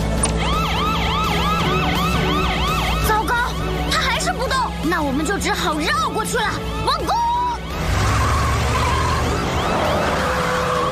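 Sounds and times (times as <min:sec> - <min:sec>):
video game vehicle's electronic siren wailing: 0:00.2 - 0:03.9, 0:07.1 - 0:10.9
speech: 0:05.3 - 0:07.2.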